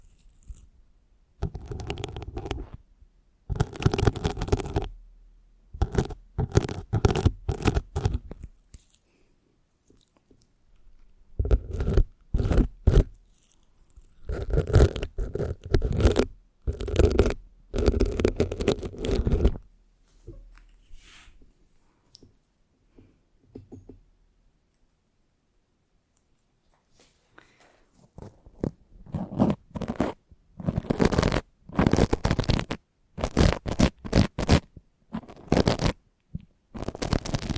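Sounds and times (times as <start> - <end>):
intense scratching right on a microphone: 1.4 - 2.8, 3.5 - 4.9, 5.8 - 8.5, 11.4 - 13.2, 14.0 - 19.6, 28.0 - 36.0, 36.7 - 37.5.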